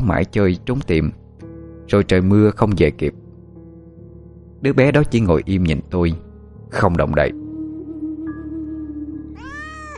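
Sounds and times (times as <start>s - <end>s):
speech: 0.1s - 1.2s, 1.9s - 3.2s, 4.6s - 7.4s
cat meowing: 9.4s - 9.9s.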